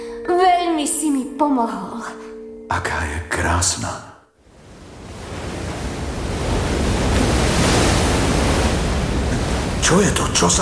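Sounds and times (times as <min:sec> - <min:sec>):
speech: 0:01.0 - 0:04.1, 0:09.8 - 0:10.5
ocean waves crashing against rocks in front of a cave: 0:04.5 - 0:10.5.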